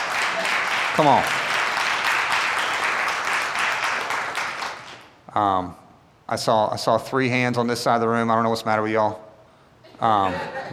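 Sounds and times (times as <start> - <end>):
large crowd clapping: 0.0 - 5.1
speech: 1.0 - 1.4, 5.4 - 9.2, 10.0 - 10.7
laughter: 9.9 - 10.7.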